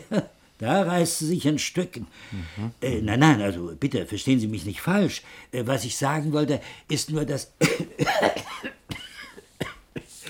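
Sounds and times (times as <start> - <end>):
speech: 0.1 - 8.5
person coughing: 7.6 - 10.2.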